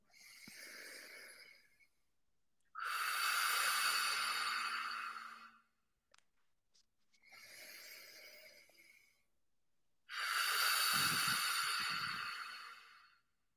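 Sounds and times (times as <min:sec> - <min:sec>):
slow deep breaths during a breathwork exercise: 0:00.0 - 0:02.0, 0:02.7 - 0:05.8, 0:07.1 - 0:09.4, 0:10.1 - 0:13.4.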